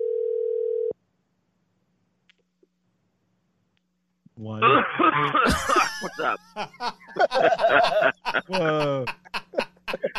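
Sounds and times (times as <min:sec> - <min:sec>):
telephone dial tone as a call is placed: 0:00.0 - 0:00.9
speech: 0:04.4 - 0:09.2
laughter: 0:04.6 - 0:10.1.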